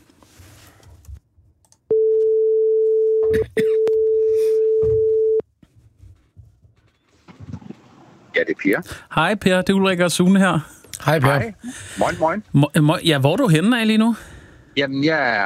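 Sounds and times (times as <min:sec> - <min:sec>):
ringback tone from an outgoing phone call: 0:01.9 - 0:05.4
speech: 0:08.7 - 0:15.4.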